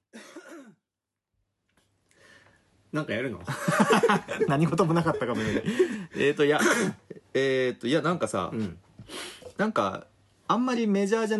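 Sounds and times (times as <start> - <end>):
person coughing: 0.1 - 0.8, 6.5 - 7.1
speech: 2.9 - 11.3
laughter: 3.5 - 6.4.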